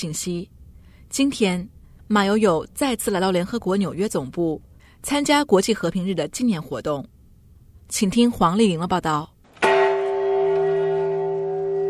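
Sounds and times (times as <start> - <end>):
speech: 0.0 - 7.1, 7.9 - 9.3
bell struck at UN headquarters in New York: 9.6 - 11.8.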